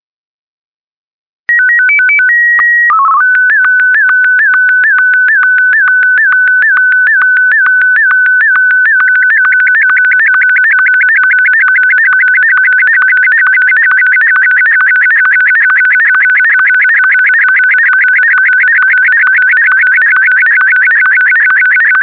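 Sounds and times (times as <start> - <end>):
SSTV signal: 1.5 - 22.0.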